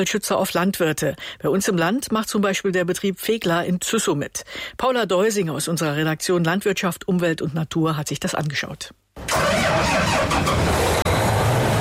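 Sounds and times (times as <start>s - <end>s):
speech: 0.0s - 10.7s
combine harvester engine droning on a farm in Züssow: 9.2s - 11.7s.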